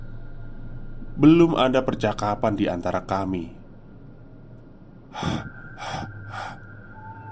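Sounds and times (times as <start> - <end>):
speech: 1.2 - 3.6
heavy panting to catch breath after running: 5.2 - 6.6.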